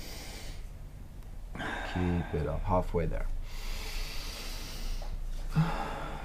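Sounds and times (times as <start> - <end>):
deep rhythmic breathing in and out: 0.0 - 6.2
speech: 2.0 - 3.4.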